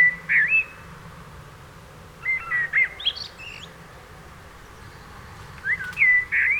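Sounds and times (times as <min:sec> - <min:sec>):
Common blackbird Turdus merula singing: 0:00.0 - 0:00.8, 0:02.2 - 0:03.8, 0:04.6 - 0:06.5.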